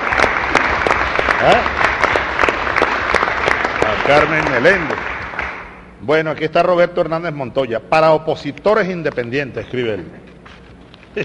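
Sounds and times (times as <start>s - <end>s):
crowd applauding a female government minister in Venezuela: 0.0s - 5.9s
speech: 1.4s - 1.8s, 4.1s - 5.0s, 6.0s - 10.3s.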